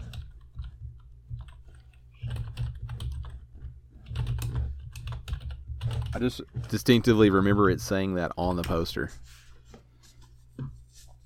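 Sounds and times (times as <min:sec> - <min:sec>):
typing a search on a computer keyboard: 0:00.0 - 0:06.4
speech: 0:06.2 - 0:09.4.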